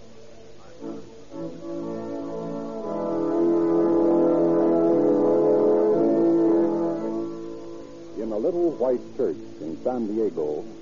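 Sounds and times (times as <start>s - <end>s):
brass band playing a stirring patriotic march: 1.5s - 7.3s
speech: 8.5s - 10.7s.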